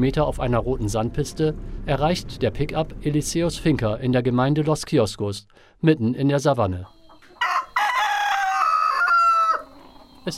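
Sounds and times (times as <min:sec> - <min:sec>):
speech: 0:00.0 - 0:07.0
rooster crowing on a farm in the Colombian savanna: 0:07.2 - 0:10.2.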